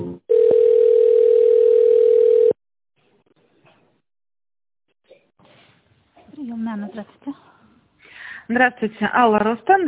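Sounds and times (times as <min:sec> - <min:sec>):
telephone line tones while a call is transferred: 0:00.3 - 0:02.6
speech: 0:08.5 - 0:09.8.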